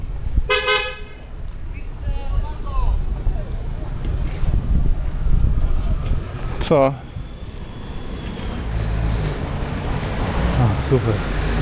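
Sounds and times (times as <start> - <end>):
street rumble: 0.0 - 11.6
wind noise: 0.0 - 11.6
car horns honking: 0.5 - 1.9
speech: 6.7 - 7.0, 10.9 - 11.4.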